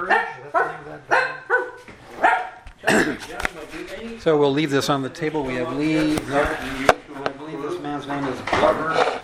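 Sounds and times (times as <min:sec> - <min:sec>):
local dog barking: 0:00.0 - 0:02.6
speech: 0:04.0 - 0:07.0, 0:08.1 - 0:09.1.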